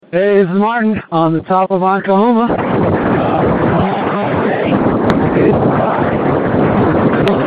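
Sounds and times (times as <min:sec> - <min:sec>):
speech: 0:00.1 - 0:03.6
strong cold wind buffeting microphone on a mountain summit: 0:02.3 - 0:07.4.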